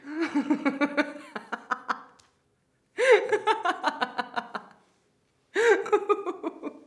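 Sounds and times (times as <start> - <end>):
laughter phrases: 0.0 - 2.2, 3.0 - 4.9, 5.6 - 6.8.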